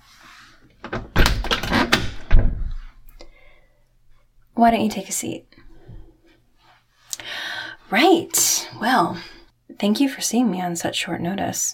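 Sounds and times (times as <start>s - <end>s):
door knocks and rattles: 0.8s - 2.9s
speech: 4.6s - 5.7s, 7.9s - 11.7s.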